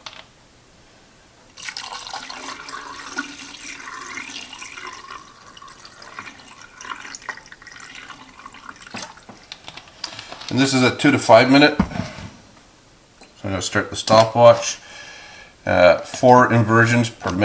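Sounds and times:
photographic fixer pouring into a film developing tank: 0:01.5 - 0:09.6
speech: 0:10.5 - 0:12.1, 0:13.6 - 0:14.8, 0:15.7 - 0:17.4.

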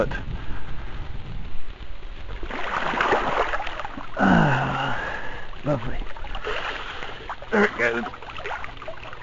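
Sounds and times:
speech: 0:00.0 - 0:00.3, 0:07.6 - 0:08.2
wind rumbling: 0:00.0 - 0:09.2
water splashing as someone wades into a river: 0:02.3 - 0:09.2.

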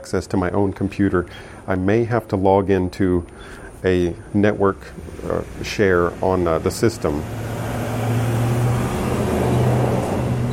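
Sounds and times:
speech: 0:00.0 - 0:07.6
road noise: 0:00.6 - 0:10.5
truck passing outside with low engine rumble: 0:03.1 - 0:10.5.

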